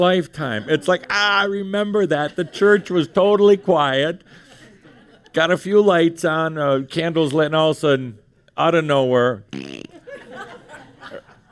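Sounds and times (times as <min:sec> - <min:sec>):
speech: 0:00.0 - 0:04.4, 0:05.3 - 0:09.8
people laughing and chuckling: 0:00.2 - 0:06.1, 0:09.8 - 0:11.5
voice blowing a raspberry imitating a fart: 0:09.5 - 0:10.1.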